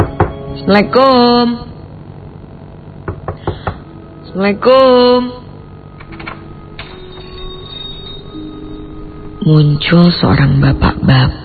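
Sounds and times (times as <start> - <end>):
firm knocking on a wooden door: 0.0 - 0.4, 3.0 - 3.8
speech: 0.7 - 1.7, 4.4 - 5.4, 9.5 - 11.4.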